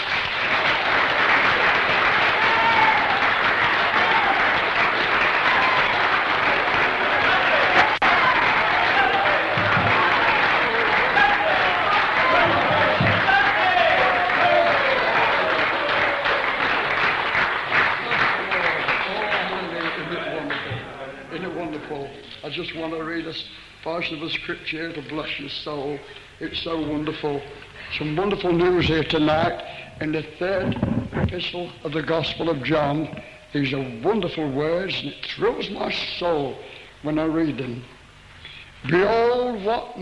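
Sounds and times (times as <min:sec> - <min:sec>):
audience applause at a Christian gathering: 0:00.0 - 0:21.9
speech: 0:23.3 - 0:38.0, 0:38.8 - 0:39.9.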